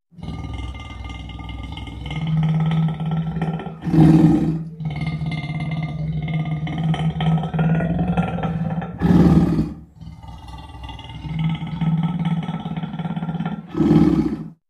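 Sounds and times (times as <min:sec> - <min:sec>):
massive lion growl: 0:00.1 - 0:14.6.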